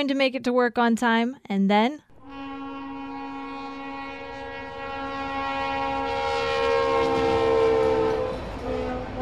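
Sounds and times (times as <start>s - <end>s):
speech: 0.0s - 2.0s
train horn blaring: 2.1s - 9.2s.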